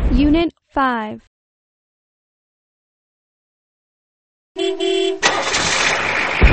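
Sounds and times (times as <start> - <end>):
speech: 0.2 - 1.3, 4.6 - 6.1
car engine cranking and starting: 5.2 - 6.4.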